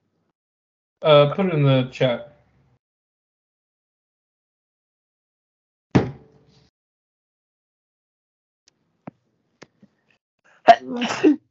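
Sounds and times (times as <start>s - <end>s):
speech: 1.0s - 2.3s, 10.7s - 11.4s
person sneezing: 10.7s - 11.4s.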